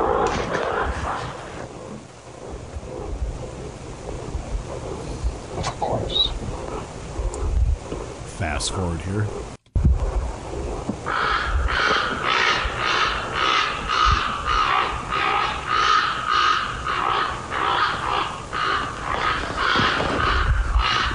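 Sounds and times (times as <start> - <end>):
low rumble of wind: 0.0 - 21.1
speech: 8.6 - 9.6
crow or raven cawing at night outside a house: 11.0 - 21.1.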